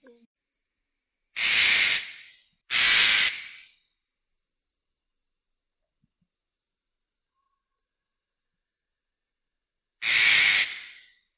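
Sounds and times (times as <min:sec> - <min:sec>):
Eclectus parrot screech: 0:01.4 - 0:03.7, 0:10.0 - 0:11.2.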